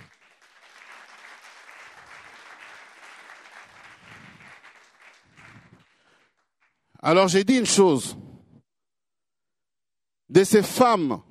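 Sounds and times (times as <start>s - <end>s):
church congregation clapping during a worship service: 0.0s - 7.4s
speech: 7.0s - 8.2s, 10.4s - 11.2s.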